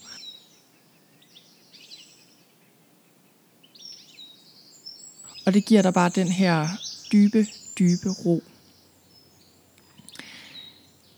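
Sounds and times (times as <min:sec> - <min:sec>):
birds chirping and twittering softly: 0:00.0 - 0:00.6, 0:03.7 - 0:11.1
person speaking calmly: 0:05.4 - 0:08.5
speech: 0:05.5 - 0:08.5.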